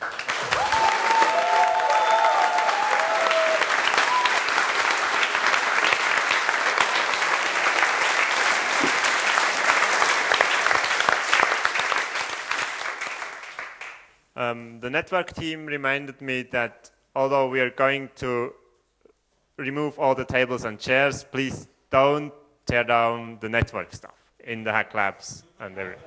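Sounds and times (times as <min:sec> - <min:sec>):
audience applauding at a hacker event party: 0:00.0 - 0:14.0
speech: 0:14.9 - 0:18.6, 0:19.6 - 0:26.0.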